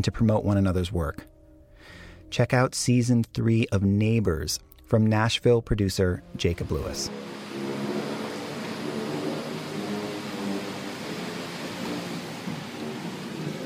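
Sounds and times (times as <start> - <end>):
speech: 0.0 - 7.3
traffic engines rumbling: 6.2 - 13.6
tires hissing on a rain-soaked road: 6.6 - 13.6.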